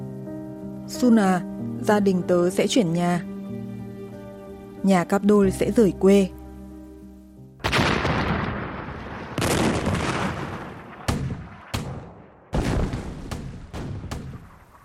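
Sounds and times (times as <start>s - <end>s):
speech: 0.9s - 3.3s, 4.8s - 6.4s
heavy wartime artillery blasts: 7.6s - 14.8s.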